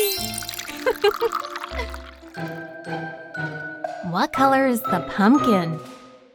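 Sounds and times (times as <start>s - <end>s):
tea pouring into a cup: 0.2s - 2.7s
speech: 1.1s - 2.5s, 4.2s - 5.9s.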